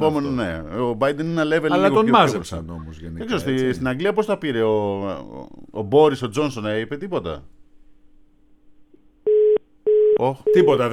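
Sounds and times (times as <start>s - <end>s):
speech: 0.0s - 7.6s, 10.2s - 10.9s
telephone busy signal after hang-up: 9.3s - 10.8s.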